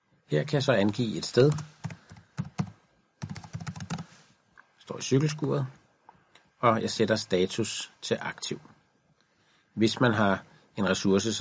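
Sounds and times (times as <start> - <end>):
speech: 0.3 - 1.8, 5.0 - 5.8, 6.6 - 8.8, 9.8 - 11.3
keystrokes on a computer keyboard typing into a booking system: 0.8 - 4.1.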